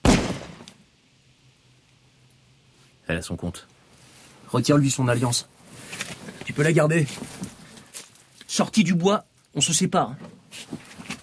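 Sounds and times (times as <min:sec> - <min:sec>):
pistol shot fired point-blank: 0:00.0 - 0:00.8
speech: 0:03.1 - 0:03.8, 0:04.5 - 0:05.6, 0:06.6 - 0:07.4, 0:08.6 - 0:10.8.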